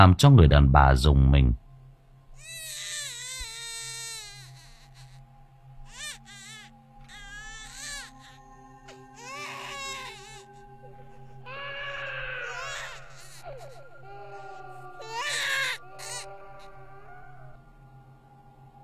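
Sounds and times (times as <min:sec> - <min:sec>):
speech: 0:00.0 - 0:01.6
low constant hum: 0:00.0 - 0:18.8
infant crying in the distance: 0:02.4 - 0:05.3, 0:05.9 - 0:17.6.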